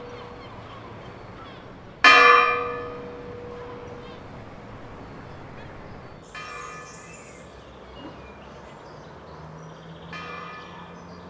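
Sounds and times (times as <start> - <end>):
church bell ringing: 0.0 - 7.7, 10.1 - 11.2.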